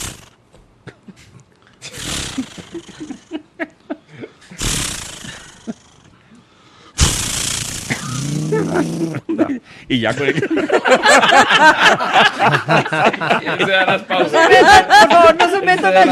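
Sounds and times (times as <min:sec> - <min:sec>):
voice imitating starting and revving a chainsaw: 0:00.0 - 0:00.3, 0:01.9 - 0:03.2, 0:04.6 - 0:06.0, 0:07.0 - 0:09.3
laughter: 0:02.4 - 0:04.6, 0:08.4 - 0:16.1
speech: 0:08.8 - 0:09.2, 0:09.9 - 0:16.1.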